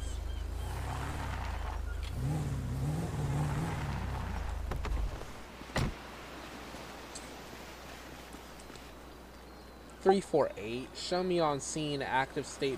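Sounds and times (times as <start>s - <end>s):
FBI patrol car engine revving and accelerating: 0.0s - 5.2s
speech: 10.0s - 12.7s.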